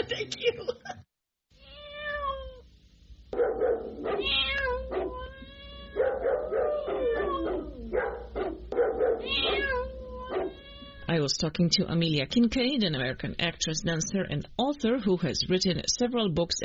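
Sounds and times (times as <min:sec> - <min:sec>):
laughter: 0:00.0 - 0:01.0
cat meowing and yowling: 0:01.6 - 0:02.6, 0:03.9 - 0:08.0, 0:09.0 - 0:11.1
speech: 0:11.2 - 0:16.6.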